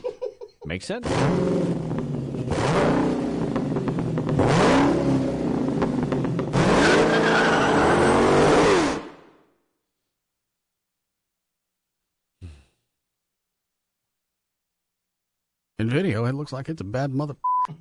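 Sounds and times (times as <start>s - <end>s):
speech: 0.7s - 3.1s, 15.9s - 17.8s
motorcycle growl: 1.0s - 7.1s
car engine revving: 1.0s - 9.2s.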